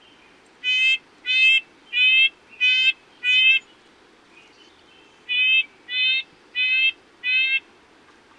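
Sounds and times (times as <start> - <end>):
red-breasted nuthatch giving short nasal tinny notes: 0.6 - 3.7, 5.2 - 7.7.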